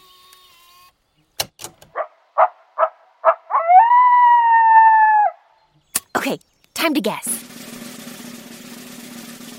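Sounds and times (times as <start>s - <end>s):
coyote in Yellowstone yipping and howling: 1.9s - 5.6s
speech: 6.2s - 7.5s.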